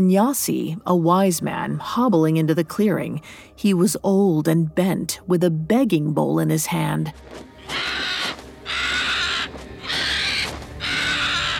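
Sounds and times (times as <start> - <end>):
speech: 0.0 - 8.1
bird screaming with raspy crow-like calls: 7.6 - 11.5.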